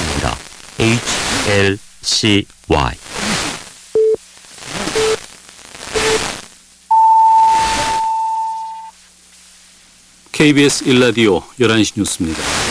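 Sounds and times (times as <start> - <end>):
hissy static-filled radio background: 0.0 - 6.9, 7.5 - 12.6
speech: 0.8 - 3.2, 10.4 - 12.6
radio time signal short beeps: 6.0 - 6.2, 6.9 - 8.9
long higher-pitched radio time signal tone: 6.9 - 8.9.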